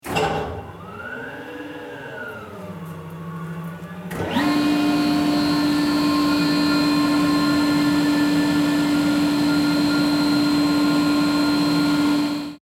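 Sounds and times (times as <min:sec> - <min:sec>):
compressor: 0:00.0 - 0:12.6.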